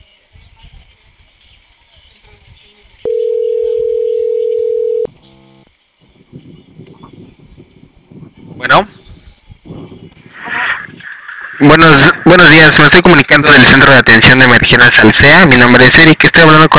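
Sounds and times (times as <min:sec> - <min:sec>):
noise: 0:00.0 - 0:16.7
telephone dial tone on a call from an emergency response centre: 0:03.1 - 0:05.1
speech: 0:08.7 - 0:08.9, 0:11.6 - 0:16.7.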